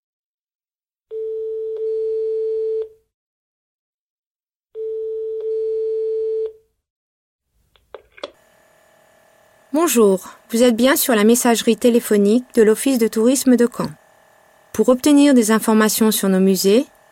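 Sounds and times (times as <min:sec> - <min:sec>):
telephone ringback tone on a call to a tourist office voicemail line: 0:01.1 - 0:03.0, 0:04.8 - 0:06.6
speech: 0:09.8 - 0:14.0, 0:14.8 - 0:17.0.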